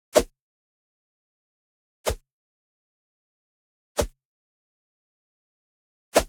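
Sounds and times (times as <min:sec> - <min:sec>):
wooden stick swish: 0:00.1 - 0:00.3, 0:02.0 - 0:02.2, 0:04.0 - 0:04.2.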